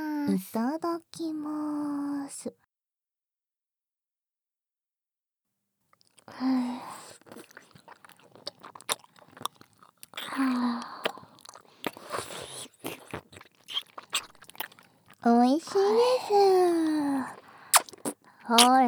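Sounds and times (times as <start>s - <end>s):
speech: 0.2s - 2.6s, 6.3s - 7.5s, 10.4s - 10.9s, 15.2s - 17.4s, 18.5s - 18.8s
wet crunching and sucking on a lollipop: 6.2s - 15.3s, 16.3s - 18.8s.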